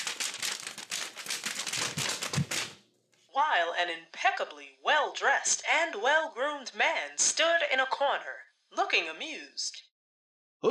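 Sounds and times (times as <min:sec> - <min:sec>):
papers being shuffled angrily by a man behind a desk: 0:00.0 - 0:02.8
speech: 0:03.4 - 0:09.8.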